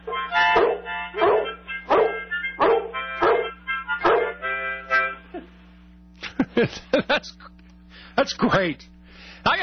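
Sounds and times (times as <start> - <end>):
low constant hum: 0.0 - 9.6
dog barking excitedly: 0.1 - 4.4
sharp yips of a dog: 0.6 - 4.4
laughter: 6.2 - 7.7
speech: 6.6 - 7.5, 8.2 - 9.6.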